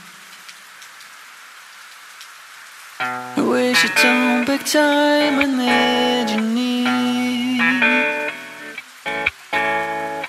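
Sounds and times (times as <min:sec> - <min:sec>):
rain pouring during a storm: 0:00.0 - 0:10.2
speech: 0:03.8 - 0:06.9.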